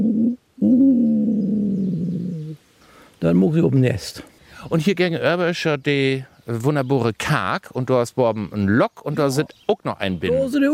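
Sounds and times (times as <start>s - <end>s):
wood pigeon nest call cooing: 0.0s - 2.6s
speech: 3.2s - 10.7s.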